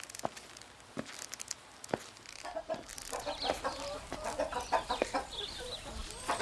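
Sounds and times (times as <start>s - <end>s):
flock of chickens clucking: 2.4s - 6.3s.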